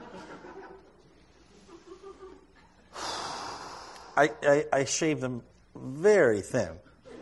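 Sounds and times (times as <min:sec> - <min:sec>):
laughter: 0:00.0 - 0:03.0, 0:06.9 - 0:07.2
soft breathy nasal sounds: 0:02.9 - 0:04.3
speech: 0:04.2 - 0:06.8.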